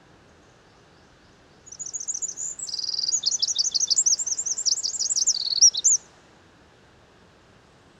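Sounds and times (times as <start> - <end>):
Eurasian wren Troglodytes troglodytes singing: 1.6 - 6.0.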